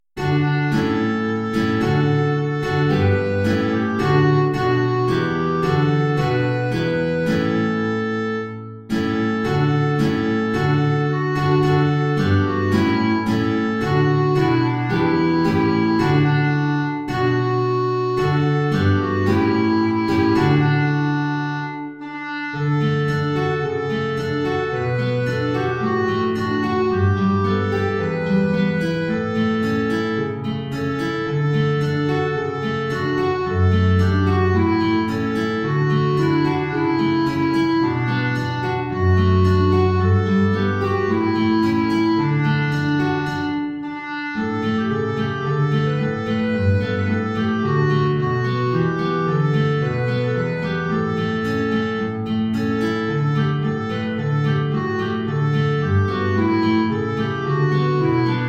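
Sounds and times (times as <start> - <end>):
clarinet in B flat: 0.2 - 58.4
low guitar: 0.2 - 58.4.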